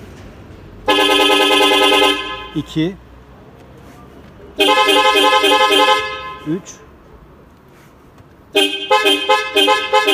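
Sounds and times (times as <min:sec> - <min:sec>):
car horn with seven selectable tones blaring: 0:00.8 - 0:02.7, 0:04.6 - 0:06.7, 0:08.5 - 0:10.1
speech: 0:02.6 - 0:03.0, 0:04.6 - 0:06.8, 0:08.5 - 0:10.1.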